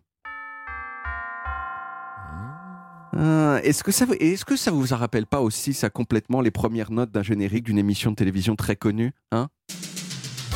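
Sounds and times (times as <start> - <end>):
bell chime melody: 0.3 - 5.7
speech: 3.1 - 9.6.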